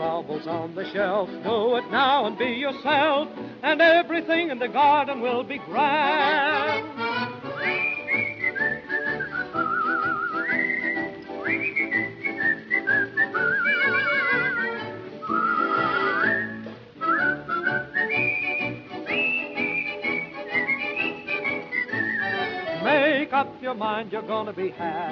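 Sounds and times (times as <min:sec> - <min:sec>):
full instrumental accompaniment: 0:00.0 - 0:23.3
speech: 0:00.2 - 0:07.0, 0:23.4 - 0:25.1
person whistling a bright bouncy melody: 0:07.4 - 0:22.9.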